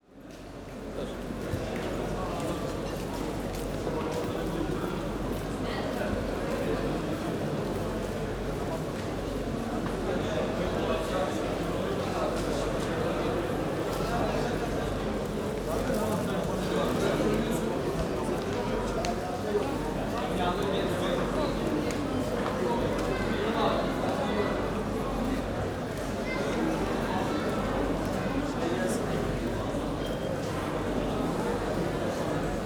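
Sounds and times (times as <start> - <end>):
light activity in big indoor bazaar market in Turkey: 0.0 - 32.6.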